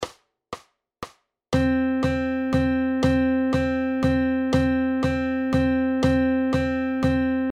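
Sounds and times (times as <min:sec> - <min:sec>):
quarter notes in 3/4 time: 0:01.6 - 0:07.5.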